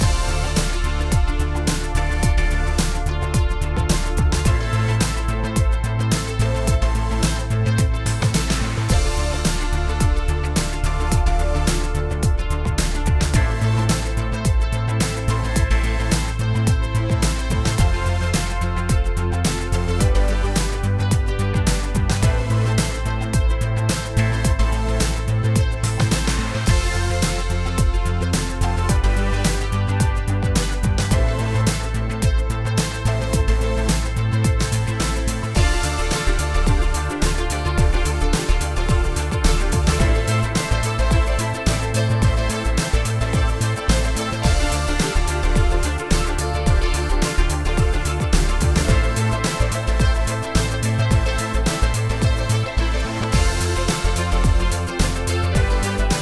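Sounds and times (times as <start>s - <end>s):
sci-fi robot evolution sound loop: 0.0s - 56.2s.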